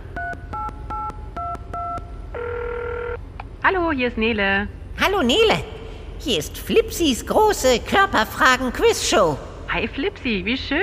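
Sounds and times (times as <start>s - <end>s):
steady sustained phone tone: 0.6s - 3.2s
speech: 3.6s - 10.8s.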